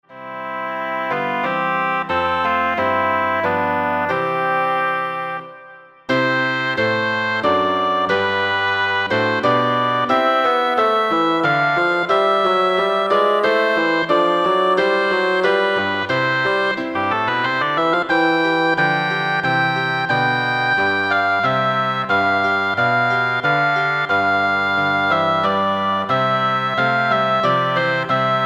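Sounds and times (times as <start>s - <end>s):
bassoon: 0.0s - 28.4s
oboe: 0.0s - 28.4s.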